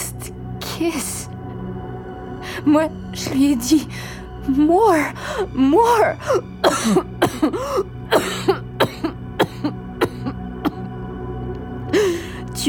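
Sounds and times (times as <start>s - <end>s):
speech: 0.8s - 1.4s, 2.6s - 8.3s
person coughing and hacking up blood: 6.6s - 11.0s.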